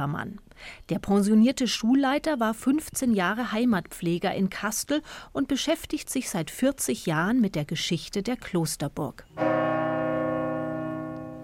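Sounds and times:
speech: 0.0 - 9.6
church bell strike ringing: 9.4 - 11.4.

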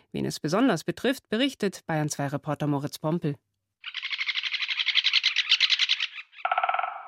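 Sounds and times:
speech: 0.1 - 3.5
great spotted woodpecker giving harsh chattering calls: 3.8 - 7.0.

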